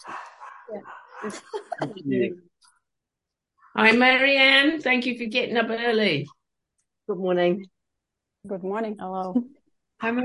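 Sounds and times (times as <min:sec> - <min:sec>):
dogs barking: 0:00.0 - 0:01.6
speech: 0:00.7 - 0:02.5, 0:03.8 - 0:06.4, 0:07.1 - 0:07.8, 0:08.4 - 0:10.2
laughter: 0:01.2 - 0:02.1.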